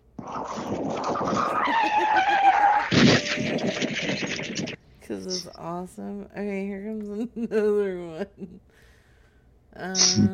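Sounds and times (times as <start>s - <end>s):
caller's voice over the phone imitating a tire-skid screech: 0.3s - 4.8s
speech: 5.2s - 8.7s, 9.8s - 10.3s.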